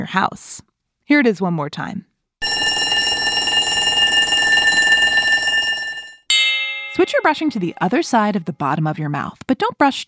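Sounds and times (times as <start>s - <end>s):
speech: 0.0s - 2.1s, 7.0s - 10.0s
school bell ringing: 2.4s - 7.7s.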